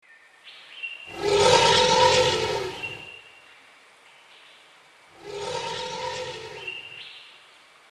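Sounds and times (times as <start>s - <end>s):
elephant: 1.1s - 3.2s, 5.2s - 7.0s.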